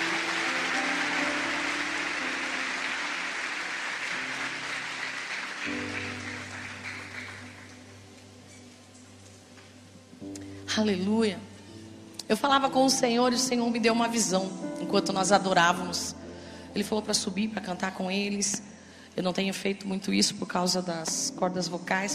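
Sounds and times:
audience applauding: 0.0 - 8.2
sustained keyboard chords: 0.0 - 17.4
speech: 10.8 - 11.5, 12.3 - 22.1.

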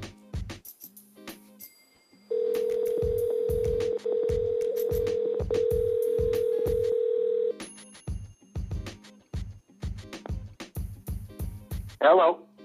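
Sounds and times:
rhythmic thumping beat: 0.0 - 0.8, 2.8 - 7.0, 8.1 - 12.0
outgoing phone call ringing tone: 2.3 - 7.6
speech: 12.0 - 12.4.

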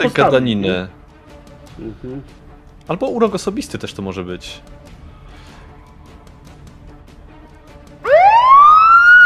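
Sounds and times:
speech: 0.0 - 1.0, 1.8 - 4.8
police siren wailing: 8.0 - 9.2.

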